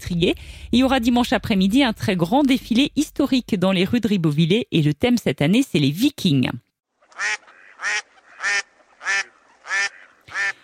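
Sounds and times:
speech: 0.1s - 10.0s
duck quacking: 7.0s - 10.6s.

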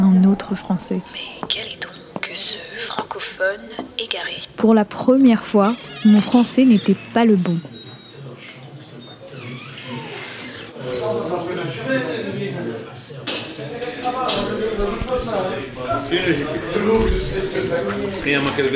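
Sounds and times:
murmur of voices talking in a busy bar: 0.0s - 18.7s
speech: 0.4s - 7.8s, 15.3s - 18.7s
dishes and cutlery clinking in a busy bar: 13.2s - 15.3s.

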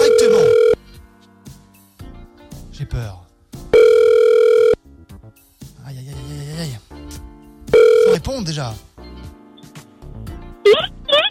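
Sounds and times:
single steady electronic telephone ringing tone: 0.0s - 0.8s, 3.8s - 4.8s, 7.8s - 8.2s
speech: 8.5s - 8.9s.

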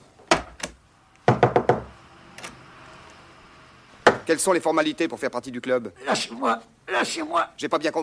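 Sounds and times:
knocking on a door: 1.3s - 1.9s
speech: 4.3s - 8.0s.

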